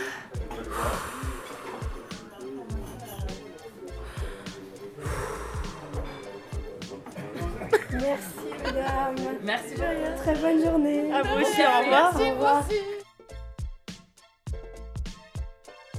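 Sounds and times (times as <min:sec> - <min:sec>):
heavy breathing into microphone: 0:00.0 - 0:03.2, 0:03.8 - 0:06.7
laughter: 0:00.0 - 0:13.0
steady music-like tones: 0:00.0 - 0:15.9
speech: 0:08.0 - 0:12.9.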